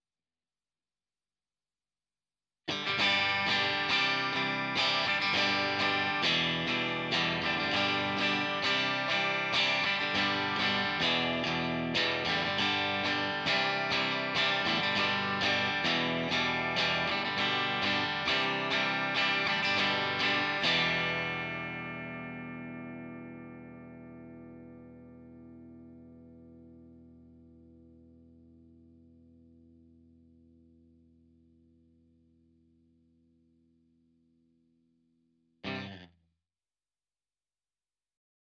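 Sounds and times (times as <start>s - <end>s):
clean electric guitar with treble tone: 2.7s - 32.1s, 35.6s - 36.2s.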